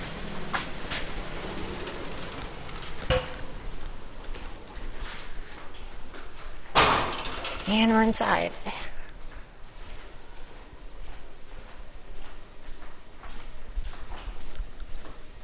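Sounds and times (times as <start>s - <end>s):
doors banging open and shut: 0.0s - 4.7s, 6.7s - 7.9s
rumble: 0.0s - 6.1s
speech: 7.7s - 8.8s.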